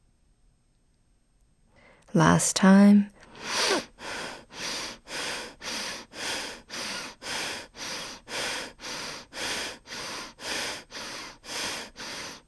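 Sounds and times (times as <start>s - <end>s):
speech: 2.1s - 3.9s
rapid rhythmic breathing during a guided breathing exercise: 3.2s - 12.4s.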